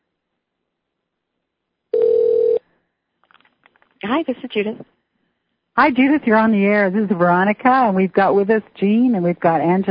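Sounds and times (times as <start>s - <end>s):
outgoing phone ring tone: 1.9s - 2.7s
speech: 4.0s - 5.0s, 5.8s - 9.8s.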